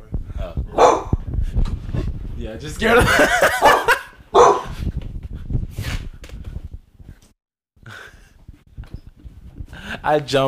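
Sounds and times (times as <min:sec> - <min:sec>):
dog barking at its own reflection in a mirror: 0:00.8 - 0:01.2, 0:03.5 - 0:04.8
speech: 0:02.4 - 0:04.0, 0:10.0 - 0:10.4
laughter: 0:02.8 - 0:04.1.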